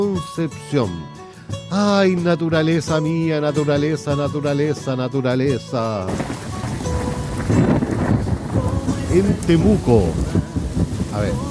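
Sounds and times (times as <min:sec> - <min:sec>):
speech: 0:00.2 - 0:06.5, 0:09.2 - 0:10.5, 0:11.2 - 0:11.4
heavy rain: 0:06.1 - 0:11.4
low rumble of thunder: 0:06.1 - 0:11.4.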